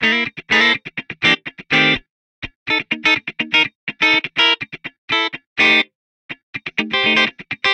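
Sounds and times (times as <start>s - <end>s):
funk guitar in C major: 0.0s - 7.7s.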